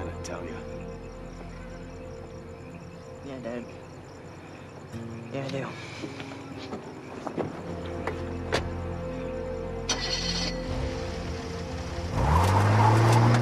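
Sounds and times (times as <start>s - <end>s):
speech: 3.3s - 3.9s, 4.9s - 8.0s
car engine idling, revving and accelerating away: 9.9s - 13.4s.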